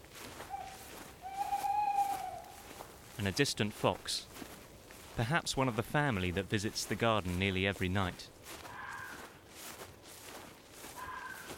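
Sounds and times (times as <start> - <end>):
tawny owl hooting from oak trees along a footpath: 0.4 - 2.8, 8.7 - 9.3, 10.9 - 11.5
speech: 3.2 - 4.4, 5.2 - 8.6.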